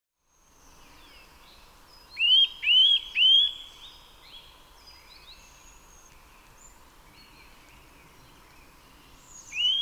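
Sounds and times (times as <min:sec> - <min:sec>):
Eurasian nuthatch giving loud rising whistled calls: 0:02.1 - 0:04.0, 0:09.4 - 0:09.8.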